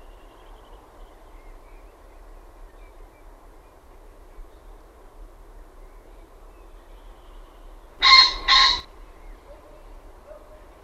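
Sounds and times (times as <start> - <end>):
common pheasant giving a harsh hoarse two-note crow: 8.0 - 10.6.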